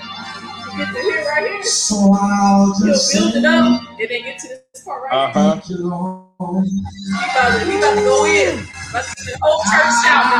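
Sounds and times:
speech: 0.8s - 10.3s
church audience shouting and yelling: 7.2s - 8.7s, 9.4s - 10.3s.

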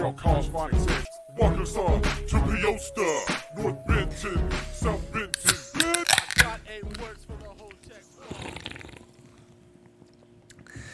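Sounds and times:
speech: 0.0s - 5.6s
fizz hissing from opened cans: 4.1s - 9.8s, 10.4s - 10.9s
cans cracking open: 4.2s - 10.9s.

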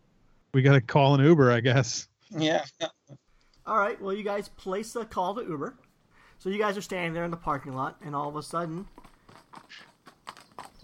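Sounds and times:
speech: 0.5s - 5.8s, 6.4s - 9.9s
hooves clip-clopping at a walking pace: 6.4s - 10.8s.

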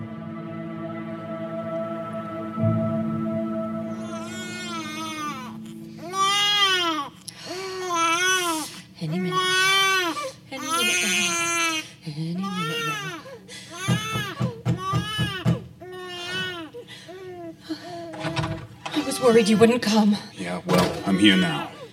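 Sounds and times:
steady low drone: 0.0s - 7.6s
teething baby crying upstairs: 3.9s - 18.2s, 18.9s - 19.8s
speech: 19.3s - 21.7s.

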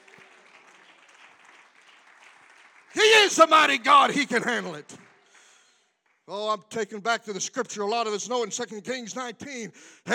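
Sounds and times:
audience clapping hands in praise: 0.0s - 6.9s
speech: 3.3s - 5.0s, 6.3s - 10.1s.

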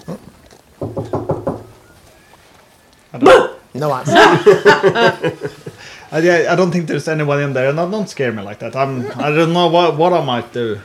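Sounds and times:
knocking on the wooden door of a house: 0.8s - 1.8s
speech: 3.1s - 10.8s
laughter: 4.0s - 6.3s, 8.8s - 10.0s.

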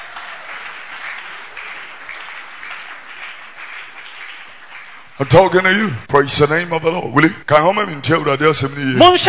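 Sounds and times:
crowd of many hands applauding: 0.0s - 5.9s
speech: 5.2s - 9.2s.

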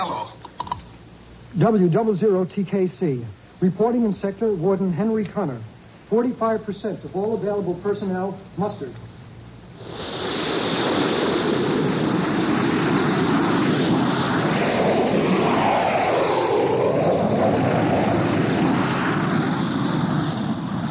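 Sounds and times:
speech: 1.5s - 9.1s
jet fighters roaring on takeoff: 9.8s - 20.8s.

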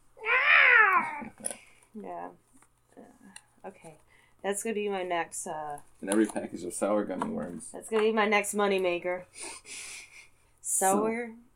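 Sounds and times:
person imitating a cat yowling: 0.2s - 1.4s
speech: 1.4s - 10.0s, 10.8s - 11.5s.

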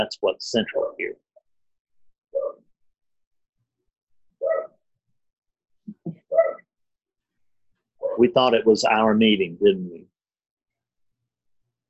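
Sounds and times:
speech: 0.0s - 1.2s, 8.2s - 10.1s
dog yipping: 2.3s - 2.6s, 4.4s - 4.8s, 6.3s - 6.7s
dog barking: 2.4s - 2.6s, 4.4s - 4.8s, 6.3s - 6.6s.

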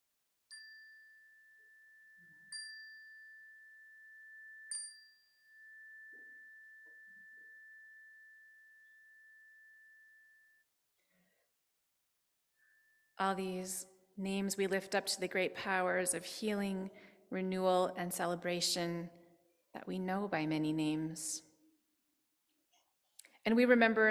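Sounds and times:
chime struck during a shared prayer: 0.5s - 10.2s
speech: 13.2s - 21.5s, 23.4s - 24.0s.

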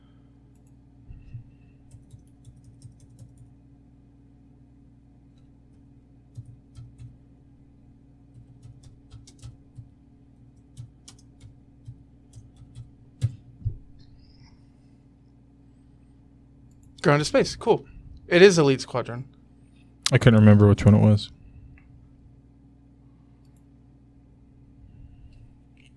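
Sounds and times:
light typing on a computer keyboard: 1.8s - 3.5s, 6.3s - 7.2s, 8.3s - 9.9s, 10.5s - 13.4s
speech: 17.0s - 19.4s, 20.1s - 21.4s.

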